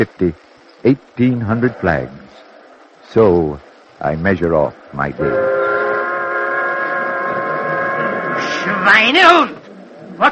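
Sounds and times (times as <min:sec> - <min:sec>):
speech: 0:00.0 - 0:02.4, 0:03.1 - 0:05.7, 0:08.8 - 0:09.6, 0:10.2 - 0:10.3
factory whistle blowing in a flag-making factory: 0:05.2 - 0:09.2.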